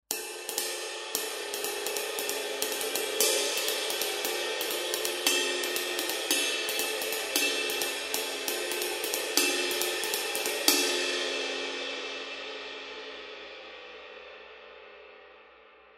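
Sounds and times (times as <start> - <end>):
medium ride cymbal: 0.1 - 12.2.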